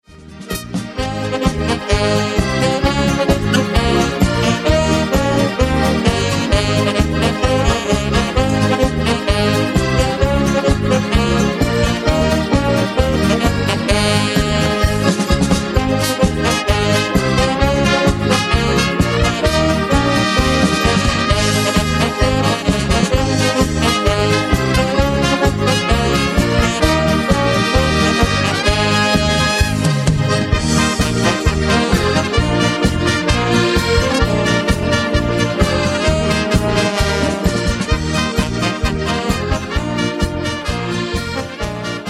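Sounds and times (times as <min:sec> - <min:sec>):
march music on a Hohner instrument: 0:00.0 - 0:42.0.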